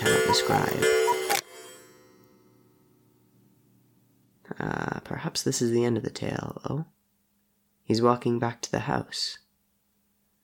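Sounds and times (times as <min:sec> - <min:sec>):
hall clock chiming with a metallic strike: 0:00.0 - 0:02.6
speech: 0:00.3 - 0:01.0, 0:04.6 - 0:07.0, 0:07.9 - 0:09.4.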